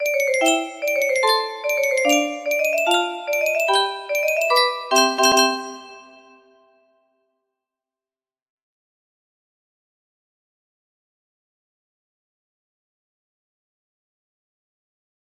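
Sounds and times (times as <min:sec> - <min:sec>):
music box melody notification: 0:00.0 - 0:06.6.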